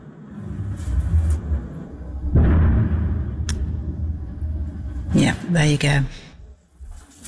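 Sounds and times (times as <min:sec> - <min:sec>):
rumbling background: 0:00.0 - 0:07.2
distant missile explosion boom: 0:01.9 - 0:05.1
speech: 0:05.3 - 0:06.2.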